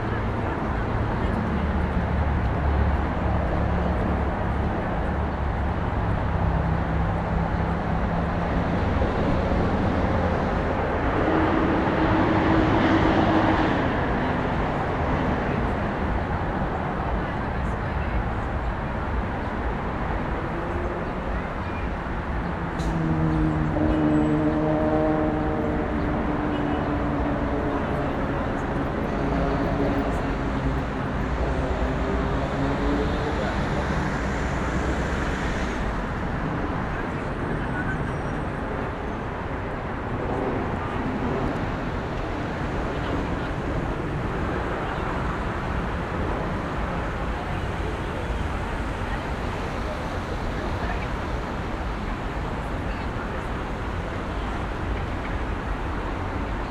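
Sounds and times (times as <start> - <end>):
urban day traffic: 0.0 - 56.6.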